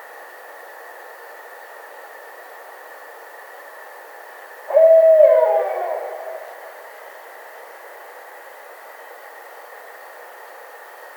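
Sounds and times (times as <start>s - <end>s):
barred owl uttering a long hooting note: 4.7s - 7.0s.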